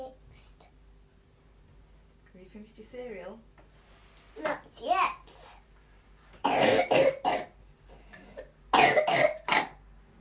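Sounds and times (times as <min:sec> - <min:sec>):
speech: 0:02.4 - 0:03.6, 0:04.4 - 0:05.2
person coughing: 0:06.4 - 0:07.5, 0:08.2 - 0:09.8.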